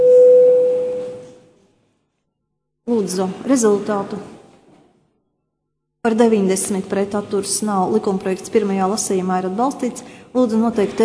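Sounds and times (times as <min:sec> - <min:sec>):
parliament voting bell electronic tone: 0:00.0 - 0:01.4
speech: 0:03.0 - 0:04.4, 0:06.0 - 0:11.0.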